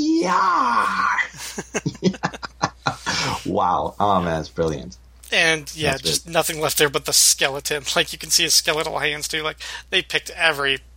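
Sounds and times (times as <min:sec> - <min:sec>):
voice imitating the dying scream of a man in a comic: 0:00.0 - 0:01.4
speech: 0:00.0 - 0:02.2, 0:03.5 - 0:10.9
choppy rhythmic bursts of laughter: 0:01.3 - 0:03.5.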